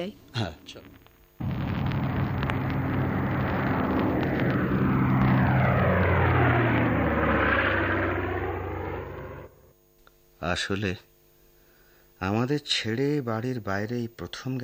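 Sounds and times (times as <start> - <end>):
speech: 0.0 - 1.0, 10.4 - 11.1, 12.2 - 14.6
passenger airplane taking off: 1.4 - 9.7.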